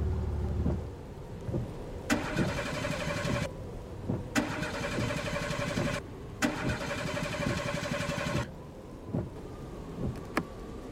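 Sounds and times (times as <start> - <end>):
low rumble of blizzard wind: 0.0 - 10.9
car engine cranking and sputtering at the side of a road in a blizzard: 1.5 - 8.5.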